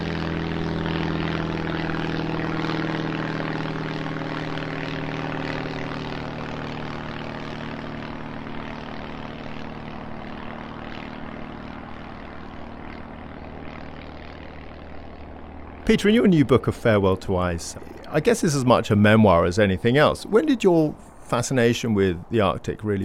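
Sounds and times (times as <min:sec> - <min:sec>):
propeller plane flying very low above sea ice during flight measurements: 0:00.0 - 0:23.0
speech: 0:15.9 - 0:23.0.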